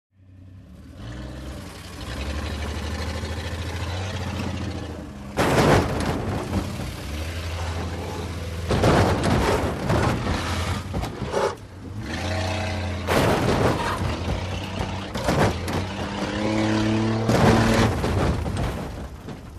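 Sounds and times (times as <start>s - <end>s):
wood demolition: 2.9s - 11.3s, 12.0s - 19.5s.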